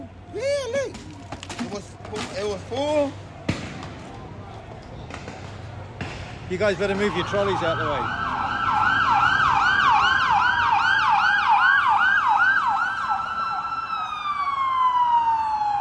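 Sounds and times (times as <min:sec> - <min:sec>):
steady traffic rumble: 0:00.0 - 0:15.7
speech: 0:00.4 - 0:03.3, 0:06.5 - 0:08.2
police siren yelping and wailing: 0:06.7 - 0:15.7.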